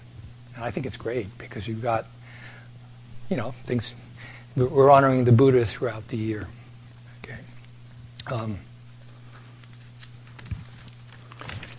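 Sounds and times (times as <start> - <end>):
steady low hum: 0.0 - 11.7
speech: 0.6 - 2.2, 3.3 - 6.6, 8.2 - 8.7
paper rustling: 9.0 - 11.7.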